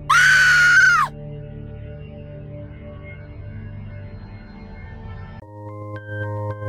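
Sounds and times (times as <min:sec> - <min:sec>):
woman letting out a loud piercing scream: 0:00.0 - 0:01.1.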